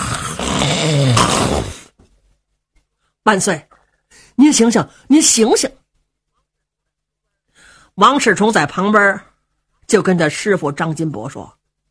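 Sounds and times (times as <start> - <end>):
man vocally imitating a thunderous snore: 0.0 - 1.9
speech: 3.2 - 5.8, 8.0 - 9.3, 9.9 - 11.6.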